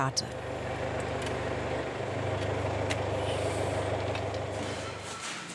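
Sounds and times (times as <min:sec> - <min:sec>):
field sprayer for small crop-protection trial plots engine drone: 0:00.0 - 0:05.4.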